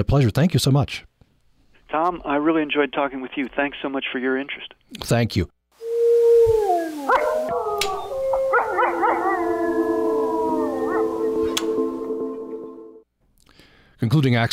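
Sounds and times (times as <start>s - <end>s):
speech: 0.0s - 1.1s, 1.9s - 5.6s, 14.0s - 14.5s
wolves howling in Yellowstone: 5.8s - 13.0s
wolves yipping in Yellowstone: 6.9s - 11.8s.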